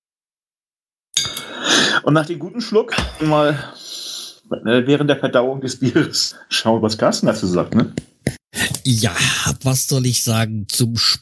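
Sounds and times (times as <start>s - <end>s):
glass beer bottles clinking together in a toast: 1.2s - 1.6s, 2.9s - 3.7s
speech: 2.0s - 11.2s.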